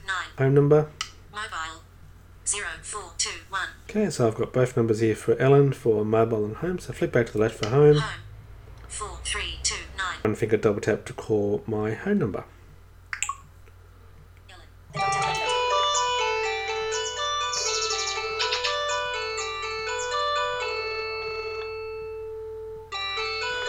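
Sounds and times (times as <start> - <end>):
speech: 0.4 - 1.0, 2.5 - 8.2, 10.2 - 12.6
home telephone ringing with bright melodic electronic tone: 15.0 - 23.6.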